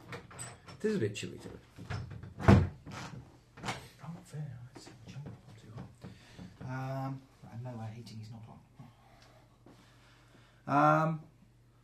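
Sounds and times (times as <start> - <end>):
speech: 0.8 - 2.0, 10.7 - 11.2
door shutting: 1.8 - 3.8.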